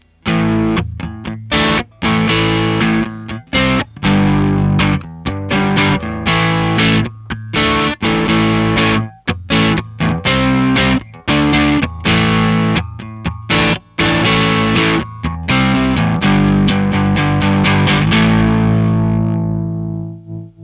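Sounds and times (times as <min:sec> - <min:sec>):
crunch Stratocaster electric guitar through Egnater amp: 0:00.0 - 0:20.6.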